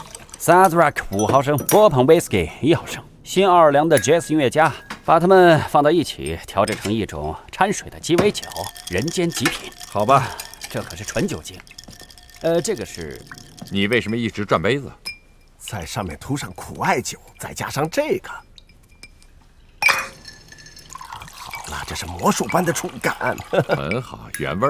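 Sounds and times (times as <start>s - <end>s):
light pouring of cocktail ingredients: 0.0s - 1.3s, 8.0s - 14.6s, 19.8s - 24.3s
liquid dripping: 0.0s - 1.9s, 6.2s - 14.8s, 16.2s - 24.4s
glass clinking while a Sazerac cocktail with bourbon and bitters is mixed: 0.0s - 2.3s, 3.9s - 5.1s, 6.0s - 24.6s
people talking: 0.4s - 11.6s, 12.4s - 15.0s, 15.6s - 18.4s, 21.4s - 24.6s.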